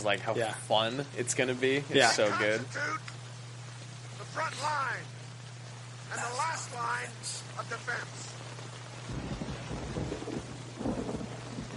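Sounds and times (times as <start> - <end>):
speech: 0.0 - 3.2, 4.4 - 5.2, 6.1 - 8.4
steady heavy rain: 0.0 - 11.7
low thunder rumbling: 8.8 - 11.7.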